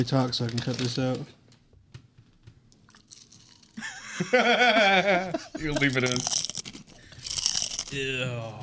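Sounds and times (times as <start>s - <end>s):
speech: 0.0s - 1.4s, 4.2s - 6.4s, 7.9s - 8.6s
crunching chips: 2.8s - 4.0s, 5.6s - 8.0s
laughter: 3.8s - 6.2s.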